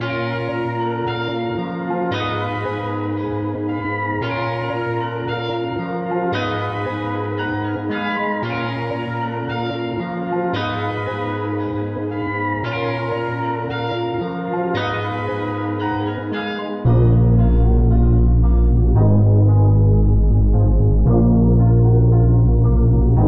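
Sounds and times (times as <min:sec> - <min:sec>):
music at 114 BPM in D sharp minor: 0:00.0 - 0:23.2.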